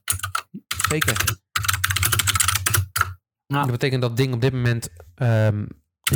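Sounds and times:
rapid typing on a computer keyboard: 0.0s - 3.2s
speech: 0.9s - 1.4s, 3.5s - 6.1s.

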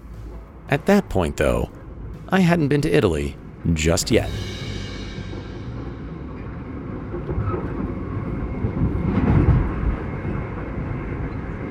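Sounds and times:
speech: 0.7s - 4.5s
train car rolling along rails: 4.4s - 11.7s.

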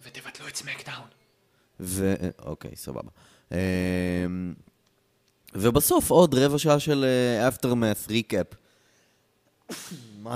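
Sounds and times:
speech: 0.6s - 1.2s, 1.8s - 4.7s, 5.5s - 8.6s, 9.7s - 10.3s
sneeze: 9.7s - 10.3s.

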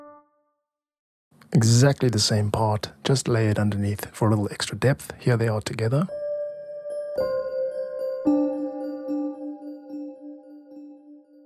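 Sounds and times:
speech: 1.5s - 6.2s
slow bell lead melody: 6.1s - 11.4s
soft piano: 6.1s - 11.4s.

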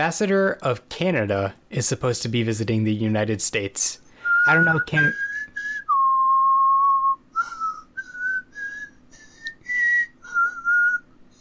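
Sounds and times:
speech: 0.0s - 5.3s
person whistling alone: 4.2s - 11.4s.

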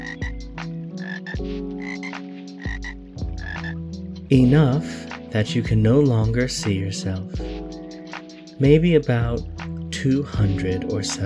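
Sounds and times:
dense layer of higher chirping calls: 0.0s - 3.8s
chorus of frogs croaking: 0.0s - 4.0s
speech: 4.3s - 7.5s, 8.6s - 11.2s.

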